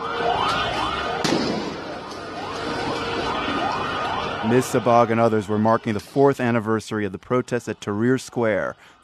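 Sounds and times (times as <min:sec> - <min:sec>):
dense noisy crowd at a street protest: 0:00.0 - 0:09.0
gunshot at a street protest: 0:01.2 - 0:01.9
speech: 0:04.5 - 0:09.0.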